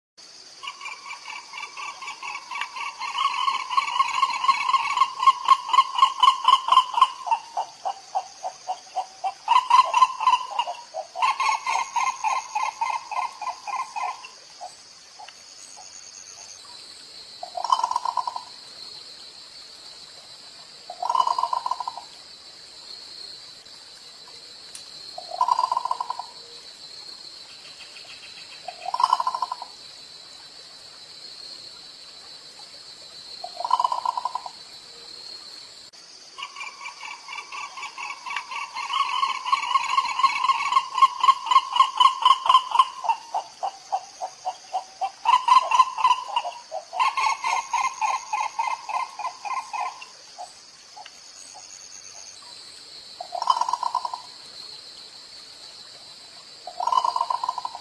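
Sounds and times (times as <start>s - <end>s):
olive ibis calling: 0.6s - 15.9s, 17.4s - 18.5s, 20.9s - 22.0s, 25.2s - 26.4s, 28.0s - 29.7s, 33.4s - 34.6s, 36.4s - 50.6s, 53.2s - 54.3s, 56.7s - 57.7s.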